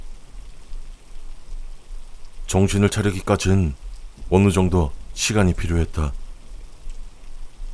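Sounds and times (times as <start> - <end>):
heavy rain drumming on surfaces: 0.0 - 7.7
speech: 2.5 - 6.2.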